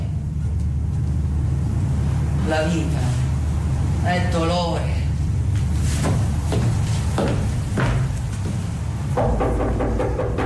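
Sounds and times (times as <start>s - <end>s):
steady low rumble and hum: 0.0s - 10.4s
speech: 2.5s - 3.2s, 4.0s - 5.0s
firm knocks on a wooden door late at night: 9.2s - 10.4s.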